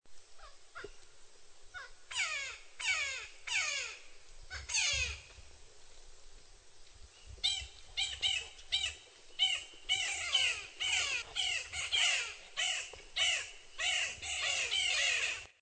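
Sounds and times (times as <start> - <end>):
Magellanic woodpecker Campephilus magellanicus calling: 1.7 - 5.3, 7.4 - 15.6.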